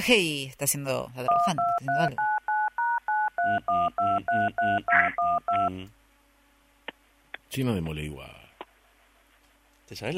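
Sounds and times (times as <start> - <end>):
speech: 0.0 - 2.4, 3.4 - 6.0, 7.5 - 8.4, 9.9 - 10.1
telephone keypad dialing tones: 1.3 - 5.7.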